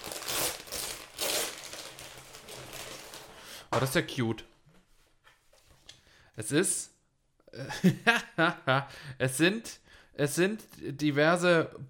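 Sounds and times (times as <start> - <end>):
silver glitter wrapping paper crinkling as a gift is unwrapped: 0.0 - 3.6
speech: 3.8 - 4.6, 6.4 - 7.0, 7.6 - 11.8.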